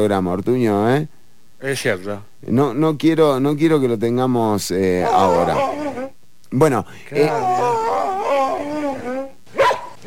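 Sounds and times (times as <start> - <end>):
speech: 0.0 - 5.8, 6.5 - 7.7
dog whimpering and whining: 5.0 - 6.1, 7.1 - 10.0.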